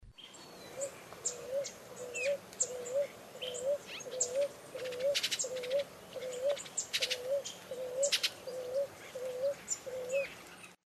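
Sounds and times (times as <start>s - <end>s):
birds singing: 0.1s - 10.8s
collared pigeon calling: 0.8s - 10.3s.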